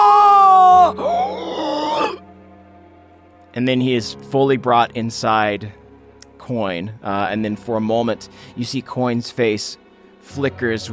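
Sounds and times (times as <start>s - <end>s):
faint eerie screams: 0.0s - 2.2s
speech: 3.6s - 5.8s, 6.5s - 10.9s.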